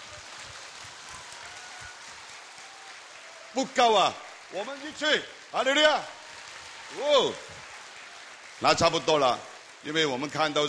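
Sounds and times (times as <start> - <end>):
audience clapping to welcome a speaker: 0.0 - 10.6
speech: 3.6 - 6.2, 6.9 - 7.6, 8.6 - 10.6.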